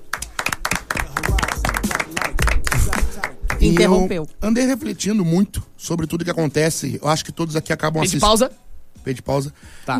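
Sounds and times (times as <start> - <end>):
audience clapping: 0.0 - 4.1
speech: 3.2 - 9.9.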